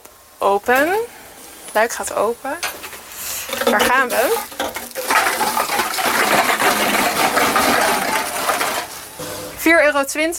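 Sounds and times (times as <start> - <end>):
speech: 0.4 - 2.7, 3.5 - 6.0, 9.6 - 10.3
cans and plastic bottles pouring into a bulk deposit return machine: 2.6 - 9.6.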